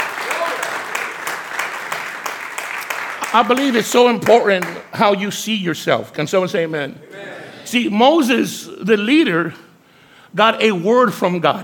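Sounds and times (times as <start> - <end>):
large crowd applauding: 0.0 - 4.8
speech: 3.3 - 9.7, 10.3 - 11.6.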